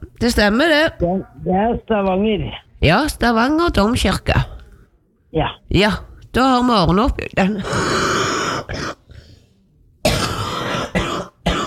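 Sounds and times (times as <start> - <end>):
speech: 0.2 - 4.5, 5.3 - 8.0
person coughing hard after something went down the wrong way: 7.5 - 9.0, 10.0 - 11.6.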